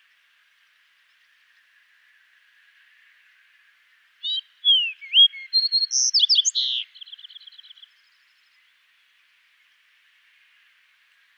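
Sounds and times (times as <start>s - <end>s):
Fox Sparrow Passerella iliaca singing whistles, warbles and a trill: 4.2s - 7.8s.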